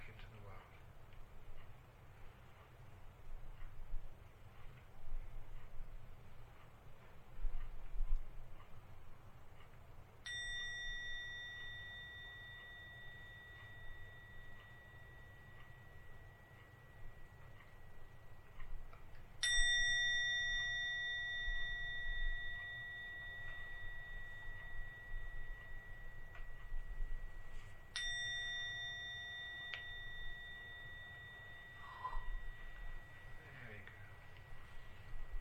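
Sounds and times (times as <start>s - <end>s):
low steady hum: 0.0s - 35.3s
meditation gong struck and ringing: 10.2s - 35.3s.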